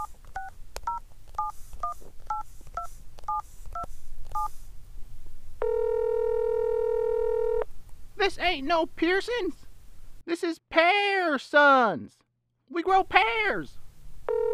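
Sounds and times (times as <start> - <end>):
telephone keypad dialing tones: 0.0 - 4.5, 5.6 - 7.6
speech: 8.5 - 9.6, 10.3 - 13.8.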